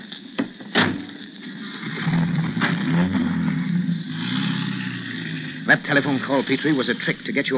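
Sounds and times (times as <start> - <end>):
car engine revving and accelerating hard in pursuit: 2.0 - 7.0
speech: 5.7 - 7.5.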